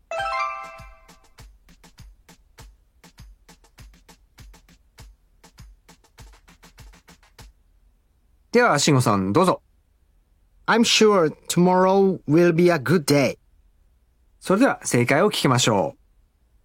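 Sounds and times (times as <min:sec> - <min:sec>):
ringing chime as a go signal: 0:00.1 - 0:01.1
rapid clicks or taps: 0:01.1 - 0:07.6
speech: 0:08.6 - 0:09.6, 0:10.7 - 0:13.4, 0:14.4 - 0:16.0.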